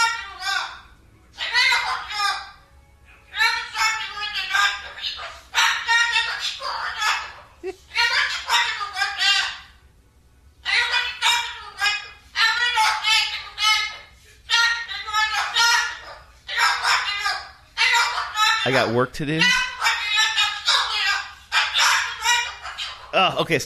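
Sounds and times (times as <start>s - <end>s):
parrot squawking and screeching: 0.0s - 2.6s, 3.2s - 9.9s, 10.6s - 23.4s
speech: 18.7s - 19.6s, 23.1s - 23.6s.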